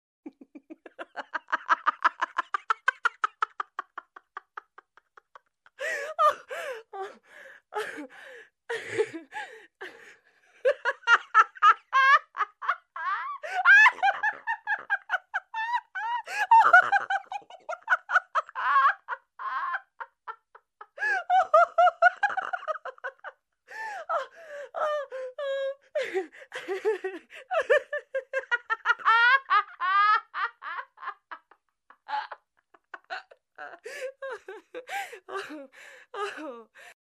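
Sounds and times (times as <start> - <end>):
woman laughing hysterically: 0.2 - 7.2, 8.7 - 36.9.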